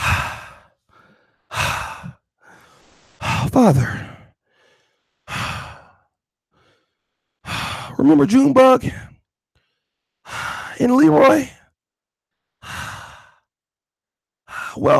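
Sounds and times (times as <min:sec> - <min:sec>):
man imitating heavy panting breathing: 0:00.0 - 0:08.0, 0:09.6 - 0:10.8, 0:12.5 - 0:13.5
speech: 0:03.5 - 0:04.0, 0:08.0 - 0:09.1, 0:10.8 - 0:11.6, 0:14.8 - 0:14.9.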